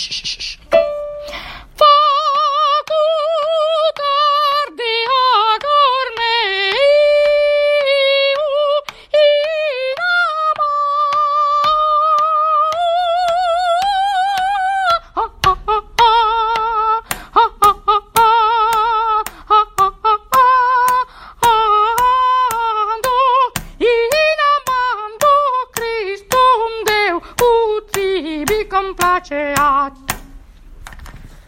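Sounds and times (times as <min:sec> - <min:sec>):
soprano singing fast: 0:00.7 - 0:30.2.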